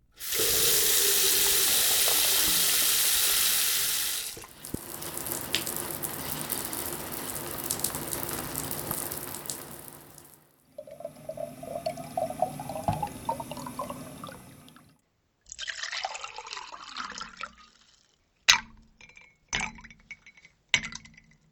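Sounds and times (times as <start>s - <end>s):
shower spray hissing: 0.1s - 10.4s, 11.4s - 14.9s
water filling a bottle: 0.2s - 14.9s
water poured into a glass: 0.2s - 14.9s, 15.6s - 18.1s
faucet gushing: 0.2s - 15.0s.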